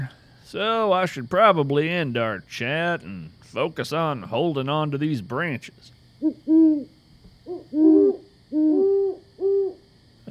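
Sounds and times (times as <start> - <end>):
faint steady hiss: 0.0 - 10.2
speech: 0.5 - 10.2
great horned owl hooting: 6.2 - 10.2.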